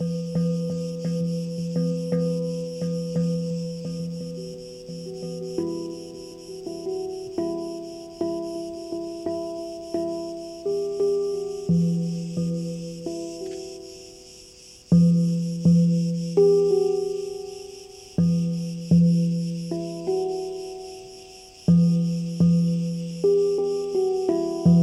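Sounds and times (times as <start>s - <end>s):
handpan played at a free camping spot in Kedrodasos, Crete: 0.0s - 24.8s
steady high chirring of crickets in Kedrodasos, Crete: 0.0s - 24.8s.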